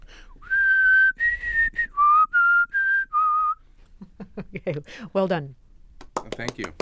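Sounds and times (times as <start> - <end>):
person whistling a tune while eating during an eating-and-whistling contest: 0.4 - 3.6
speech: 4.6 - 5.6, 6.4 - 6.8.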